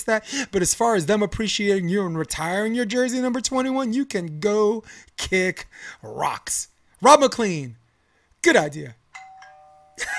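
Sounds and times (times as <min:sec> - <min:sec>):
speech: 0:00.0 - 0:07.8, 0:08.4 - 0:09.0
doorbell chime with a clear sustained electronic tone: 0:09.1 - 0:10.1.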